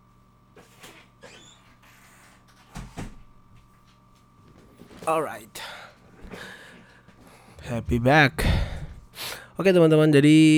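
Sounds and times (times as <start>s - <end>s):
steady hum: 0.0s - 10.5s
door shutting with a low thud: 2.7s - 3.3s
speech: 5.1s - 5.6s, 7.6s - 8.6s, 9.6s - 10.5s.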